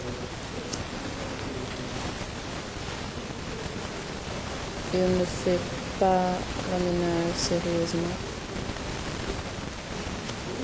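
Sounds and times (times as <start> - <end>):
heavy rain falling: 0.0 - 10.6
speech: 4.9 - 8.3.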